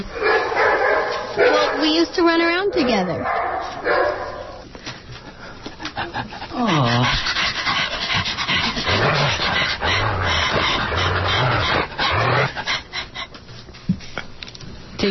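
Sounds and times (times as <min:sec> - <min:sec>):
dog barking and yipping: 0:00.1 - 0:02.0, 0:02.8 - 0:04.6
speech: 0:01.8 - 0:04.3, 0:06.1 - 0:07.3
dog panting heavily: 0:05.2 - 0:13.4.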